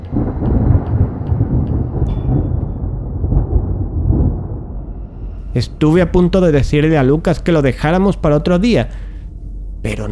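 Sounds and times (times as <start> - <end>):
deep rolling thunder from an approaching storm: 0.0 - 6.8
speech: 5.5 - 9.1, 9.8 - 10.1.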